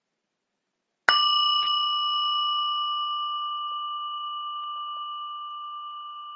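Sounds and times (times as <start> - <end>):
bright bell ringing: 1.1 - 6.3.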